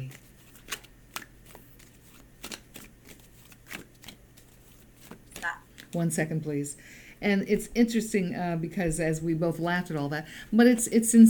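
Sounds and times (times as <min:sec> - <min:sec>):
deck of cards being shuffled: 0:00.0 - 0:06.0
low steady hum: 0:00.0 - 0:11.2
speech: 0:05.9 - 0:11.2.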